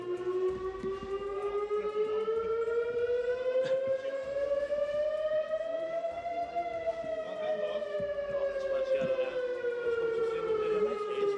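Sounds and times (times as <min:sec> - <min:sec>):
civil defense warning siren on church bell tower wailing: 0:00.0 - 0:11.3.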